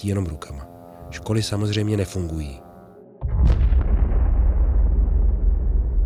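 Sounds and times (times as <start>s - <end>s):
speech: 0.0s - 2.6s
deep sustained rumble after explosion: 3.2s - 6.0s
explosion: 3.2s - 6.0s.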